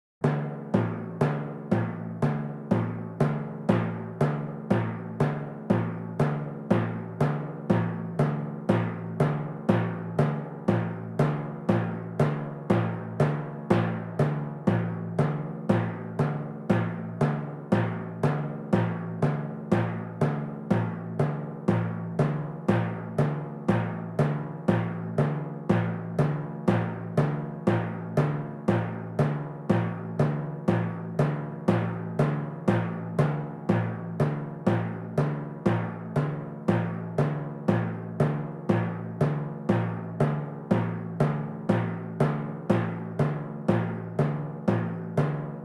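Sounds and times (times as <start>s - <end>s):
drums: 0.2s - 45.6s
timpani: 0.2s - 45.6s.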